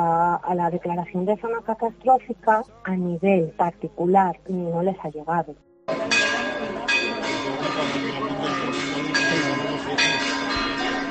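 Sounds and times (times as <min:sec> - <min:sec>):
speech: 0:00.5 - 0:06.1
church bells pealing: 0:05.9 - 0:11.0.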